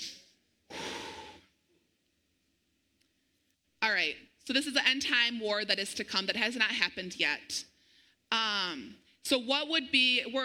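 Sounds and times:
deep breath in: 0.7 - 1.5
speech: 3.9 - 7.7, 8.3 - 10.4.

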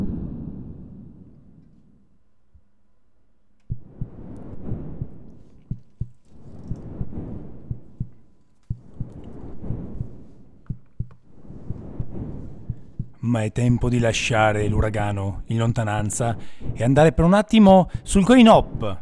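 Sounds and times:
deep booming heartbeat-like throbs in video game music: 3.7 - 13.3
speech: 13.3 - 19.0.

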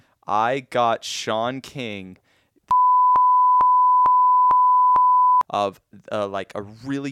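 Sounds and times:
speech: 0.3 - 2.2, 5.5 - 7.0
censor bleep tone: 2.7 - 5.4.

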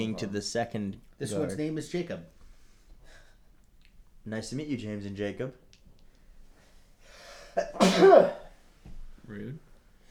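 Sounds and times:
speech: 0.0 - 2.4, 4.2 - 5.7, 7.6 - 8.4, 9.3 - 9.7
loud sneeze: 7.6 - 8.6.

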